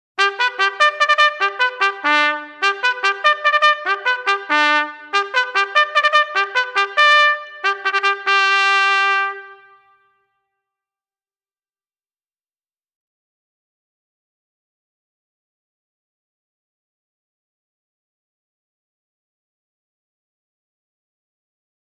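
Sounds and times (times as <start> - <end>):
bugle call: 0.2 - 10.0.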